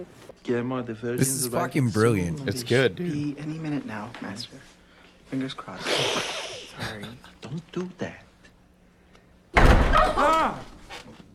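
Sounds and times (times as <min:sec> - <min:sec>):
speech: 0:00.0 - 0:08.2, 0:09.6 - 0:10.7
door bursting open with a bang: 0:09.6 - 0:10.2.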